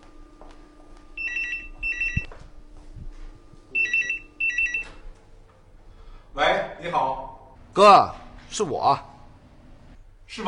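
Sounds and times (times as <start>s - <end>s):
telephone ringing in bright electronic warbling bursts: 1.2s - 2.3s, 3.8s - 5.0s
speech: 7.8s - 9.1s.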